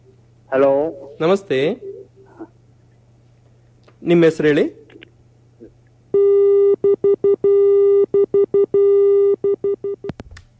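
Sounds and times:
speech: 0.5s - 1.9s, 4.0s - 4.8s
telephone busy tone after a dropped phone call: 6.2s - 10.1s.

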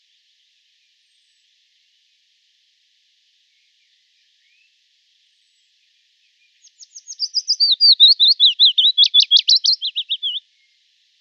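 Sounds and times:
willow warbler singing: 6.6s - 10.4s.

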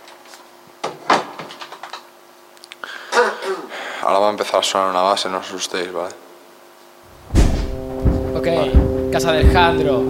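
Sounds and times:
faint steady hum: 0.0s - 10.0s
speech: 3.5s - 6.2s, 8.4s - 10.0s
door pushed shut at a home: 7.2s - 9.6s.

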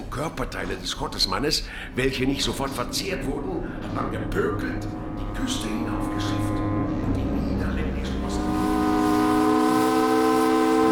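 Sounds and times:
speech: 0.2s - 8.2s
steamer's siren hooting as the ship enters a bay: 2.8s - 10.8s.

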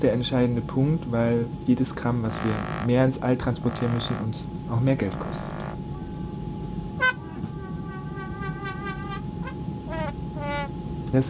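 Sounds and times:
speech: 0.0s - 5.6s
low rumble: 0.5s - 11.1s
steady tone: 1.9s - 11.0s
horn-like toots from a lightweight device honking at each change of direction: 2.3s - 3.0s, 5.1s - 6.2s, 7.0s - 10.7s.

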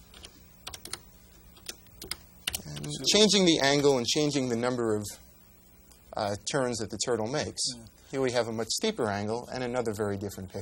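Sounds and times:
typing on a computer keyboard: 0.1s - 1.0s
speech: 2.9s - 5.2s, 6.2s - 10.5s.

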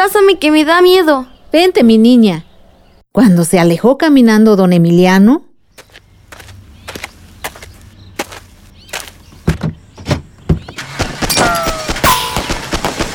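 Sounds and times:
speech: 0.0s - 2.5s, 3.2s - 5.5s
gunfire in an ambush as a radio drama sound effect: 11.2s - 13.1s
ringing ricochet-like tones: 11.3s - 12.8s.

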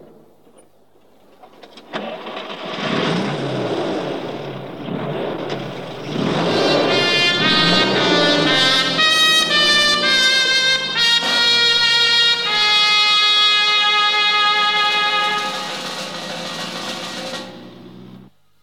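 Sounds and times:
car engines starting and driving off: 1.1s - 18.4s
sustained whine: 4.9s - 13.1s, 15.4s - 18.3s.

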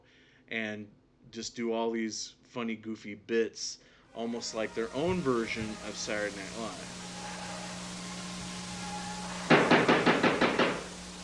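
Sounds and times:
speech: 0.5s - 7.1s
firm knocking on a door: 9.5s - 10.8s.

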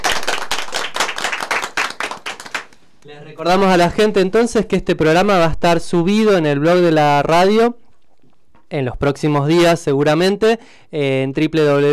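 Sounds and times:
applause from primary school students and teachers: 0.0s - 4.2s
speech: 3.0s - 7.8s, 8.7s - 11.9s.

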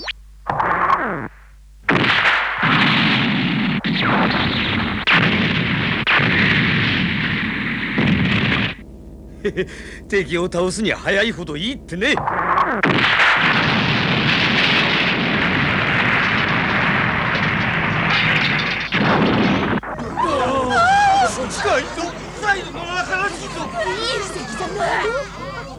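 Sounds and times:
explosion from an enemy attack, sound effect: 1.9s - 25.7s
excited voices talking: 4.3s - 18.9s, 19.5s - 25.7s
laughter: 9.4s - 12.2s, 19.8s - 25.7s
speech: 9.5s - 13.2s.

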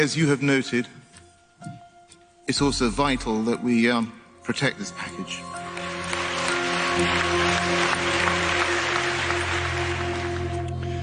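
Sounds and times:
speech: 0.0s - 1.0s, 2.5s - 5.6s, 7.0s - 8.4s
applause following a speech on an international agreement: 5.6s - 11.0s.

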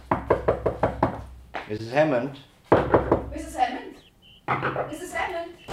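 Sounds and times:
knuckles knocking on a door: 0.1s - 1.3s
speech: 1.7s - 2.5s, 4.5s - 5.7s.

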